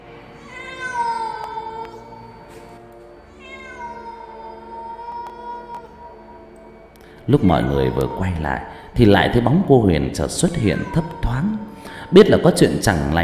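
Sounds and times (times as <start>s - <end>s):
cat meowing: 0.4s - 2.5s, 3.3s - 6.3s, 7.6s - 8.7s, 10.3s - 11.8s
speech: 7.2s - 11.2s, 12.1s - 13.2s.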